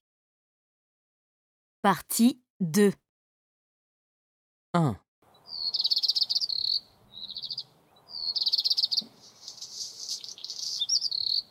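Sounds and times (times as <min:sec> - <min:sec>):
speech: 0:01.8 - 0:03.0, 0:04.7 - 0:05.0
bird calling in rapid high-pitched trills: 0:05.5 - 0:11.4.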